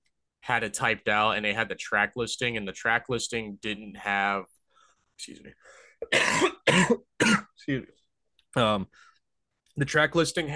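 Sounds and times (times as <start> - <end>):
speech: 0.5 - 4.6, 5.2 - 9.1, 9.8 - 10.5
person coughing during an interview: 6.0 - 7.6.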